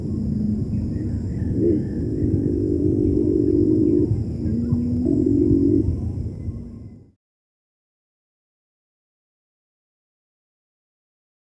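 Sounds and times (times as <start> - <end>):
Cinnamon-bellied imperial pigeon giving deep low moaning coos: 0.0 - 7.0.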